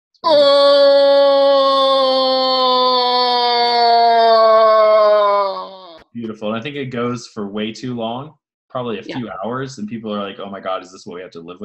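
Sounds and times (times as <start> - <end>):
speech: 0.2 - 1.0, 6.4 - 11.6
person's voice imitating a mech's whale-like moan: 0.2 - 6.0.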